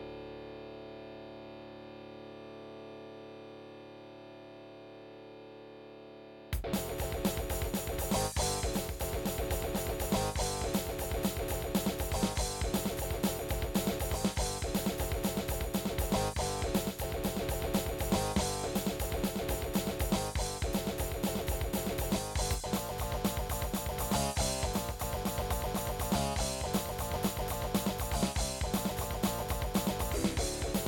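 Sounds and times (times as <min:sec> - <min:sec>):
AZTech SoundGalaxy Waverider 32 Plus soundcard test audio: 0:06.5 - 0:30.8.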